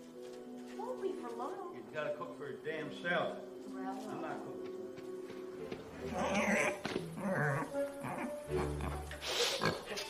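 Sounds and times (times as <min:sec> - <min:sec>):
speech: 0:01.0 - 0:04.6, 0:06.0 - 0:09.0
dog grunting and whimpering: 0:06.1 - 0:09.9.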